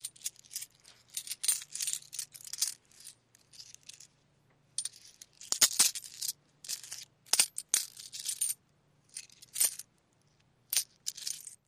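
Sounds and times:
coins jingling as they move: 0.0 - 4.1, 4.8 - 8.6, 10.7 - 11.6.

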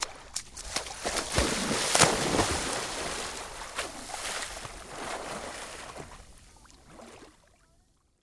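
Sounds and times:
person running: 0.0 - 5.9
person diving into water: 0.0 - 7.5
person swimming: 0.0 - 7.6.

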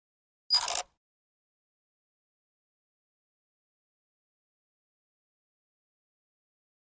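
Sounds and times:
squeaky metal button: 0.5 - 0.8.

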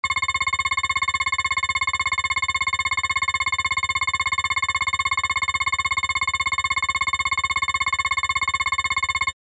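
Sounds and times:
dull pulsing scanner: 0.0 - 9.4.

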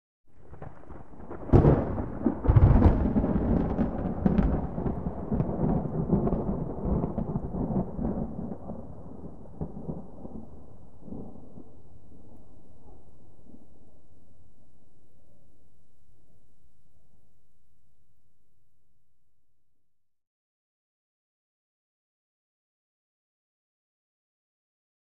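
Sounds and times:
medium distant thunder: 0.4 - 15.5.

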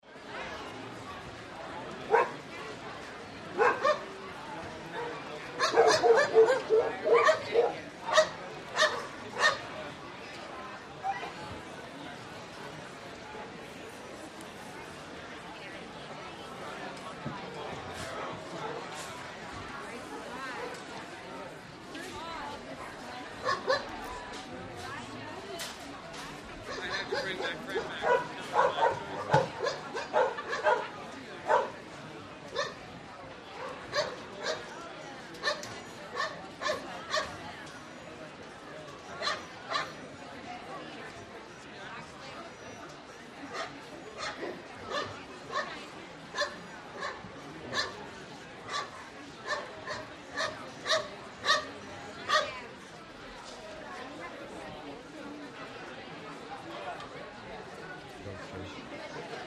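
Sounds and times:
dog show background crowd: 0.0 - 59.4
dogs at a dog show: 3.6 - 4.0, 5.0 - 9.6, 26.7 - 30.9, 31.5 - 31.8, 33.6 - 34.7, 39.2 - 39.9, 48.7 - 51.7.

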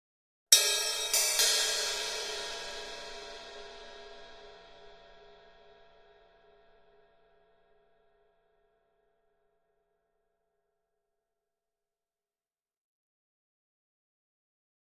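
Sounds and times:
drum cymbal accent hit: 0.6 - 6.0.

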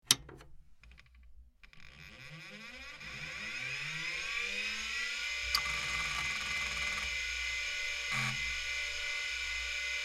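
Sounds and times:
PC hard drive whir during aborted startup: 1.6 - 10.0.

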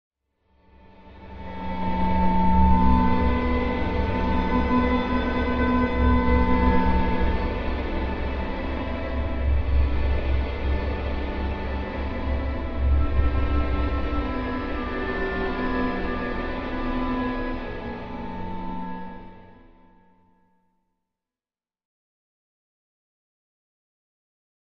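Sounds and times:
eerie sad orchestral music: 0.8 - 20.2.

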